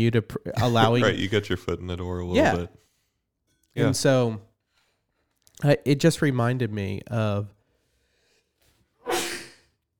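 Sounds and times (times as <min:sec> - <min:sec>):
speech: 0:00.0 - 0:02.8, 0:03.8 - 0:04.5, 0:05.6 - 0:07.6
muted sneeze: 0:09.1 - 0:09.6.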